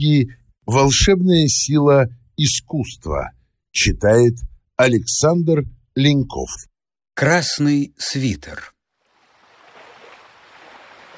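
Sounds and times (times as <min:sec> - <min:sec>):
speech: 0:00.0 - 0:08.8
sea waves with surf rolling in: 0:09.0 - 0:11.1.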